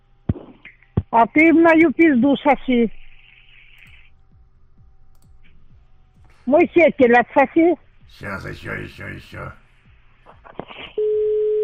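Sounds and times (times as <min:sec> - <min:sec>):
speech: 0:01.2 - 0:03.0, 0:06.5 - 0:09.6
telephone busy tone after the other party hangs up: 0:11.0 - 0:11.6.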